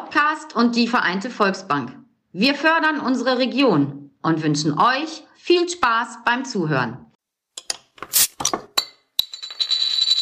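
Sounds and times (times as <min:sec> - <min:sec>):
speech: 0:00.1 - 0:07.1, 0:08.0 - 0:08.7
glasses clinking in a toast: 0:07.6 - 0:10.2
glasses chiming on after the toast: 0:08.4 - 0:10.2.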